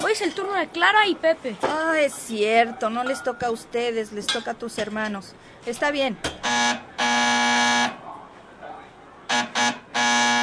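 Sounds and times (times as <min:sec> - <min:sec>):
faint murmur: 0:00.0 - 0:09.7
speech: 0:00.2 - 0:06.9
loud doorbell buzzer: 0:06.4 - 0:08.0, 0:09.3 - 0:10.4.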